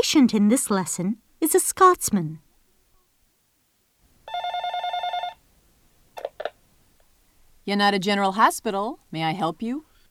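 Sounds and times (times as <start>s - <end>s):
speech: 0.0s - 2.4s, 7.7s - 9.9s
telephone ringing with electronic trill: 4.2s - 5.4s.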